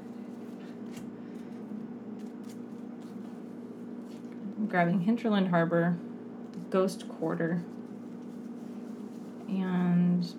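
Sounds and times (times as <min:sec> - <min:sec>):
deck of playing cards being shuffled during a card game: 0:00.0 - 0:04.6, 0:07.6 - 0:09.6
steady low hum: 0:00.0 - 0:10.3
speech: 0:04.6 - 0:06.1, 0:06.7 - 0:07.8, 0:09.5 - 0:10.3.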